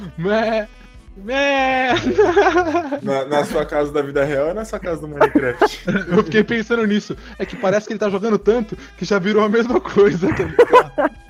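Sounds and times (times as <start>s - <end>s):
speech: 0.0s - 11.2s
person imitating sheep bleating: 1.3s - 2.4s
laughter: 1.6s - 4.0s, 5.1s - 8.2s, 9.9s - 11.2s.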